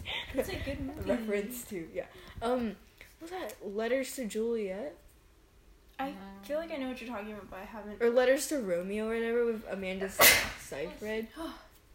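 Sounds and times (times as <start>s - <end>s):
speech: 0.4s - 5.0s, 6.0s - 11.6s
person sneezing: 10.2s - 10.6s.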